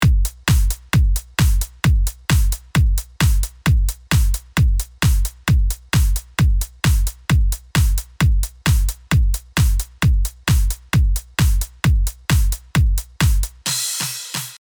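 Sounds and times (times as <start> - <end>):
drums without reverb: 0.0 - 14.5.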